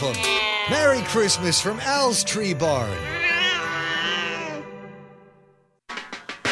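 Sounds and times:
cat meowing: 0.0s - 1.8s, 3.0s - 4.7s
speech: 0.0s - 3.4s.

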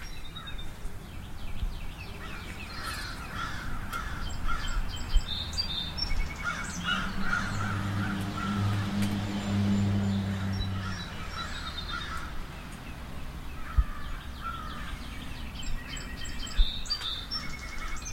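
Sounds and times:
steady outdoor hum: 0.0s - 18.1s
crows cawing near a house: 2.2s - 4.8s, 6.4s - 9.2s, 10.3s - 12.4s, 13.6s - 15.0s.

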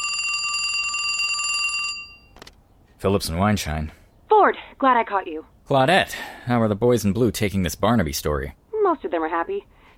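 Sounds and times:
telephone ringing: 0.0s - 2.4s
speech: 3.0s - 9.8s.

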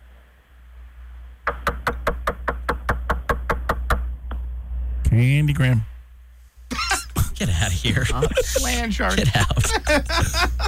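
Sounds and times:
low steady hum: 0.0s - 10.6s
firm knocks on a door: 1.5s - 4.0s
speech: 5.2s - 5.9s, 7.4s - 10.6s
laughter: 6.7s - 10.6s.

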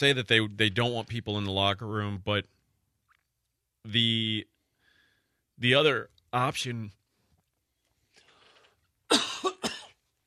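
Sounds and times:
speech: 0.0s - 2.6s, 3.8s - 4.5s, 5.6s - 7.0s
person coughing at a microphone: 9.1s - 10.0s.

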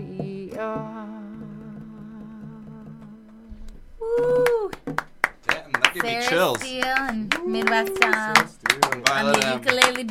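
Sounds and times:
speech: 0.2s - 1.0s, 6.0s - 10.0s
people whooping and cheering: 4.0s - 4.8s, 7.3s - 8.4s
scattered audience clapping: 4.1s - 10.0s.

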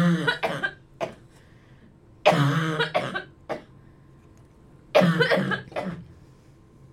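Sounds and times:
person coughing harshly: 0.0s - 1.3s, 2.2s - 3.7s, 5.0s - 6.1s.

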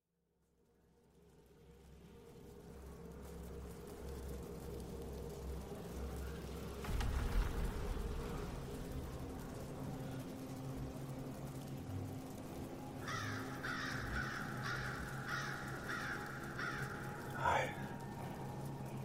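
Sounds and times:
low rumble: 1.0s - 19.0s
bird cawing harshly: 13.0s - 17.9s.

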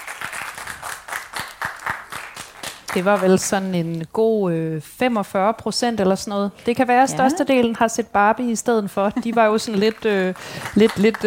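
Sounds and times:
audience clapping at a talk on brain technology: 0.0s - 3.7s, 9.6s - 11.2s
speech: 2.9s - 11.2s.

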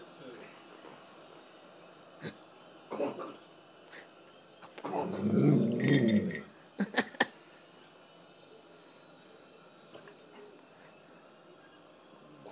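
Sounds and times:
dog growling: 4.9s - 6.5s.

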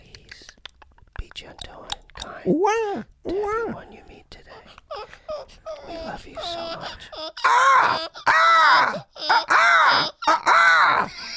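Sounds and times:
speech: 1.4s - 4.7s, 5.9s - 11.2s
people screeching in imitation of seagulls: 7.4s - 11.1s.

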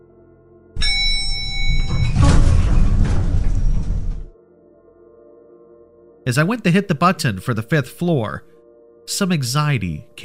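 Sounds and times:
elevator doors sliding closed: 0.8s - 4.4s
speech: 6.3s - 8.5s, 9.1s - 10.2s.

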